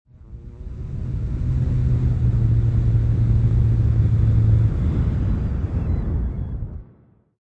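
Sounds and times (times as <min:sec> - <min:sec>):
UFO spaceship engine rumbling then shutting down: 0:00.1 - 0:07.1.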